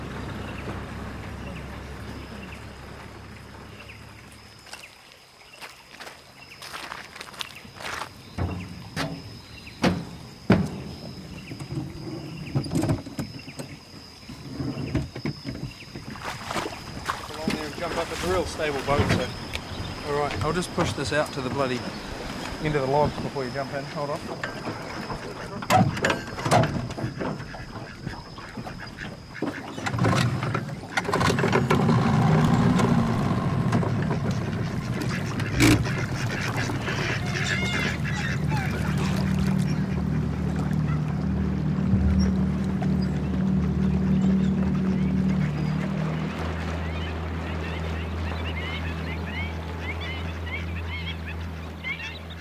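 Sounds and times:
boat gliding through water along a waterway: 0.0 - 52.3
geese or other waterfowl honking and crying: 16.5 - 52.3
speech: 18.0 - 19.4, 20.1 - 21.9, 22.6 - 24.8.

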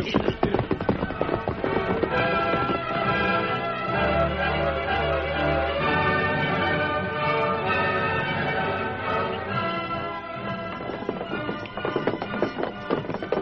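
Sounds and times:
posse of horses galloping across a bridge: 0.0 - 13.4.

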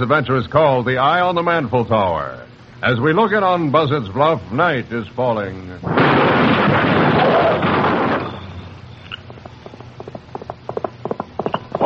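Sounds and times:
speech: 0.0 - 7.8
horse hooves galloping to a stop: 9.1 - 11.8.

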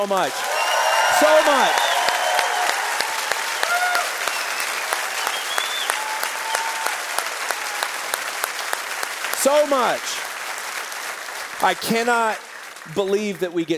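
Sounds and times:
speech: 0.0 - 0.5, 1.2 - 1.8, 9.4 - 10.2, 11.6 - 13.7
sizable audience applauding in a church: 0.0 - 13.7
whistles and cheers: 0.3 - 8.4.

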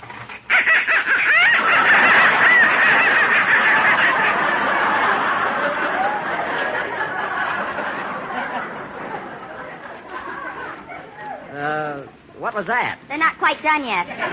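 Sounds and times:
live ducks quacking and honking: 0.5 - 5.9
laughter: 0.5 - 11.6, 14.0 - 14.3
speech: 12.6 - 14.3.

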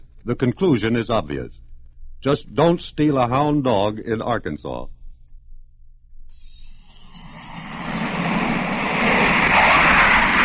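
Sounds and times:
speech: 0.2 - 1.6, 2.2 - 5.0
twin-jet British Canberra bomber flying past at more than 500 mph leaving the coast of Ireland: 6.9 - 10.4.

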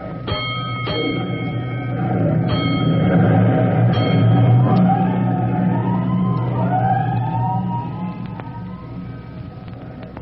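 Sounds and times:
heavy rumble of a fire engine's big engine: 0.0 - 10.2
bell-like clangs of a fire engine: 0.2 - 4.7
fire engine siren wailing as engine rolls out of the firehouse: 1.8 - 9.8.

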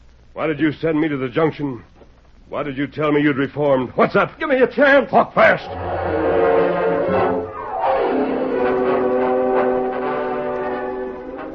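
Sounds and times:
speech: 0.4 - 1.9, 2.5 - 6.0
approaching train whistle blowing: 5.6 - 11.5.

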